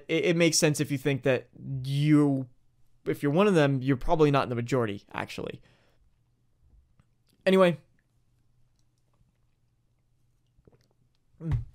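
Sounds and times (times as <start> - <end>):
speech: 0.1 - 5.8, 7.4 - 7.9, 11.4 - 11.7
person sipping water: 8.0 - 11.6.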